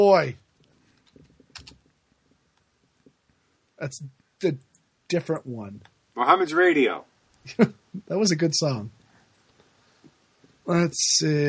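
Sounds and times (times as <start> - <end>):
speech: 0.0 - 0.4, 3.8 - 9.0, 10.7 - 11.4
typing on a computer keyboard: 1.0 - 1.8.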